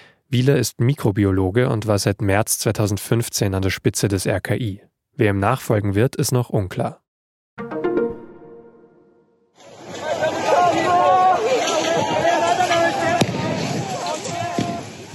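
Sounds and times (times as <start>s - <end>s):
speech: 0.3s - 7.0s
large crowd of protesters roaring and shouting as they storm the government quarter: 9.6s - 14.9s.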